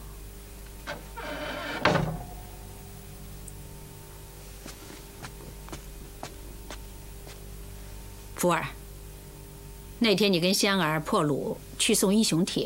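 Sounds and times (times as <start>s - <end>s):
indoor door being shut: 0.9s - 2.6s
speech: 8.4s - 8.8s, 10.0s - 12.6s.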